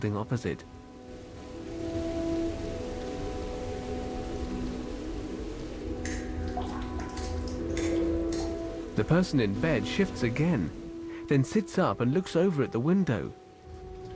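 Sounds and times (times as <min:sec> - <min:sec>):
speech: 0:00.0 - 0:00.8, 0:09.0 - 0:13.4
steady rain falling outside a building: 0:00.0 - 0:14.1
sharper drips or taps: 0:06.0 - 0:08.7.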